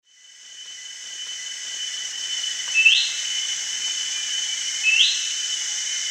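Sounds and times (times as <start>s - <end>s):
steady high insect hiss: 0.1s - 6.0s
ferruginous babbler whistled calls at Danum: 2.7s - 3.2s, 4.8s - 5.4s.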